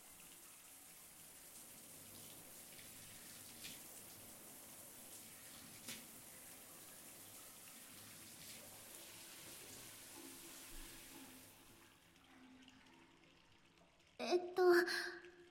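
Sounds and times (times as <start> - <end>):
water stream rinsing soap suds off a person's body: 0.3 - 11.8
person speaking: 14.2 - 15.3.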